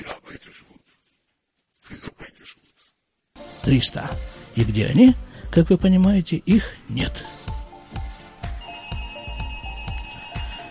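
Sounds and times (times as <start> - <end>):
speech: 3.6 - 7.3
phone ringing with musical ringtone: 8.4 - 10.6.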